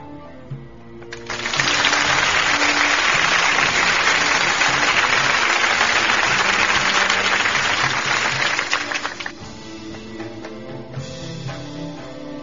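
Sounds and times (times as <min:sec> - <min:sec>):
low murmur: 0:01.0 - 0:09.4
audience applause for a performed piece: 0:01.1 - 0:09.4.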